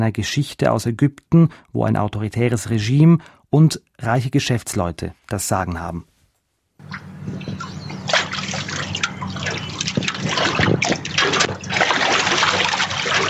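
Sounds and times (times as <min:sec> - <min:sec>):
speech: 0:00.0 - 0:06.1
Nile river waves lapping against the shore of an island near Cairo at dusk: 0:06.8 - 0:13.2
low steady hum: 0:06.8 - 0:13.2.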